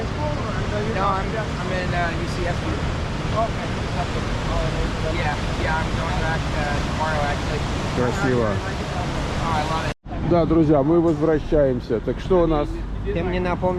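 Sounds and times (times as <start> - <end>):
speech: 1.0 - 8.8, 9.5 - 13.7
ocean waves and surf: 3.0 - 9.9.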